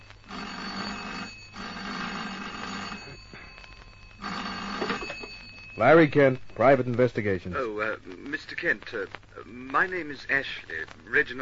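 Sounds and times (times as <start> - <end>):
old-fashioned telephone bell ringing in an office: 0.0 - 6.4
speech: 5.8 - 11.3.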